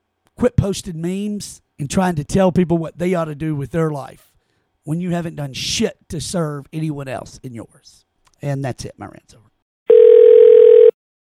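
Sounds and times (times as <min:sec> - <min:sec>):
speech: 0:00.4 - 0:09.5
electronic telephone ring: 0:09.9 - 0:11.0.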